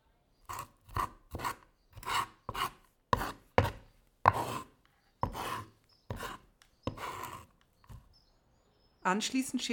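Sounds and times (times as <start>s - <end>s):
knife scraping salted, peppered garlic across a board onto a plate: 0.5s - 8.1s
speech: 9.0s - 9.7s.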